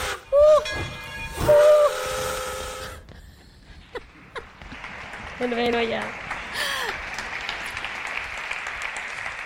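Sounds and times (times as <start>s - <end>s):
shrill train whistle blasts: 0.0s - 3.1s
train engine rumbling: 0.0s - 6.6s
speech: 5.4s - 6.2s.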